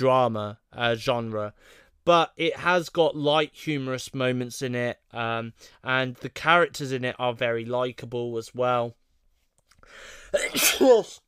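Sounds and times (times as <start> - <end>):
speech: 0.0 - 9.0, 9.9 - 11.2
person sneezing: 10.3 - 11.2.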